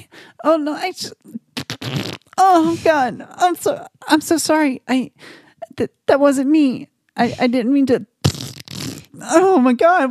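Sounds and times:
speech: 0:00.4 - 0:01.4, 0:02.4 - 0:08.1, 0:09.2 - 0:10.0
person imitating a fart with the mouth: 0:01.3 - 0:02.8, 0:08.2 - 0:09.4.

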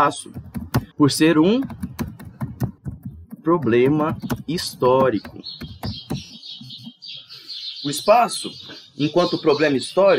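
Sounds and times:
speech: 0:00.0 - 0:01.9, 0:03.4 - 0:06.0, 0:07.8 - 0:10.1
small birds chirping in a garden: 0:00.0 - 0:10.1
sharp broadband taps: 0:00.1 - 0:07.0.

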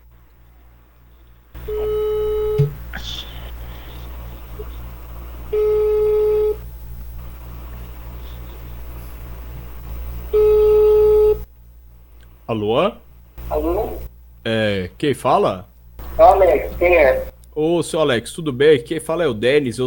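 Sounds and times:
low hum: 0:00.0 - 0:19.8
ringback tone of an outgoing telephone call: 0:01.6 - 0:02.8, 0:10.4 - 0:11.4
speech: 0:12.6 - 0:19.8.

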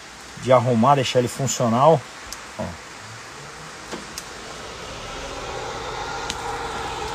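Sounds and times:
speech: 0:00.4 - 0:02.8
car dashboard ventilation fan whirring: 0:01.5 - 0:07.1.

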